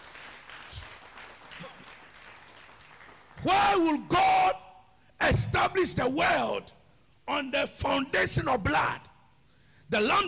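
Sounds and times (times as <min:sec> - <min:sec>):
congregation clapping: 0:00.0 - 0:04.0
speech: 0:03.4 - 0:04.6, 0:05.2 - 0:09.1, 0:09.9 - 0:10.2.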